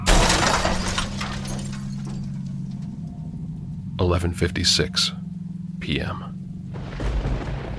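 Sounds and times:
glass shattering: 0:00.0 - 0:03.0
low rumble: 0:00.0 - 0:07.7
tinkling scattering glass fragments: 0:00.1 - 0:02.9
speech: 0:04.0 - 0:05.2, 0:05.8 - 0:06.3.

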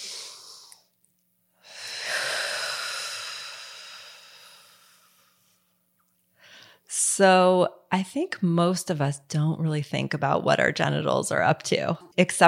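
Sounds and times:
deep breath in and out: 0:00.0 - 0:00.9, 0:01.6 - 0:05.8, 0:06.4 - 0:06.9
speech: 0:06.9 - 0:12.4.

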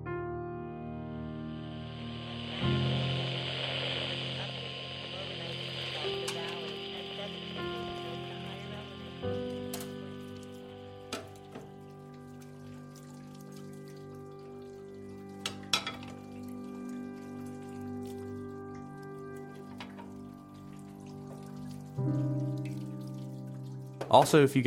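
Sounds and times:
running water hissing while washing dishes: 0:00.8 - 0:24.6
low sustained hum of tones: 0:00.9 - 0:23.7
dishes clinking while being washed: 0:15.5 - 0:16.2
speech: 0:24.1 - 0:24.6.

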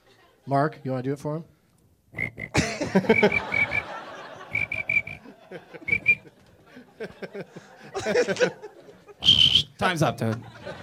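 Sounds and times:
speech: 0:00.5 - 0:03.6, 0:07.0 - 0:08.7, 0:09.8 - 0:10.8
breathy mouth noises: 0:02.2 - 0:02.6
person whistling high chirps mimicking a cricket: 0:02.2 - 0:03.9, 0:04.5 - 0:05.2, 0:05.8 - 0:06.2, 0:09.2 - 0:09.8
laughter: 0:02.5 - 0:09.3, 0:10.2 - 0:10.8.

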